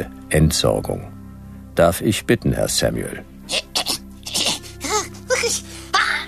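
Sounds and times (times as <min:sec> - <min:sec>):
speech: 0:00.0 - 0:01.2, 0:01.8 - 0:03.8
person sneezing loudly: 0:03.5 - 0:06.2.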